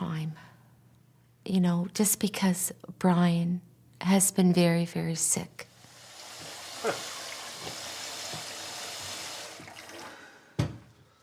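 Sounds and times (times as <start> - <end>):
speech: 1.5 - 5.7, 6.8 - 7.1
water running: 5.7 - 10.8.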